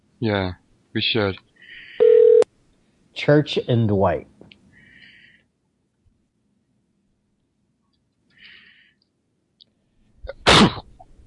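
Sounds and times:
speech: 0:00.2 - 0:01.5, 0:03.2 - 0:04.3
man sneezing: 0:10.3 - 0:10.9.

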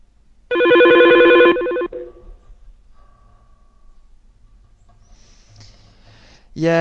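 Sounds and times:
loud electronic telephone ring warbling between two pitches: 0:00.5 - 0:02.2
speech: 0:06.6 - 0:06.8.

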